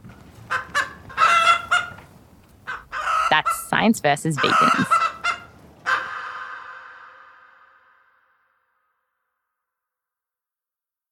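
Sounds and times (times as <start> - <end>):
chicken squawking call: 0.5 - 3.7, 4.4 - 8.0
chickens clucking: 0.5 - 7.3
speech: 3.8 - 5.0.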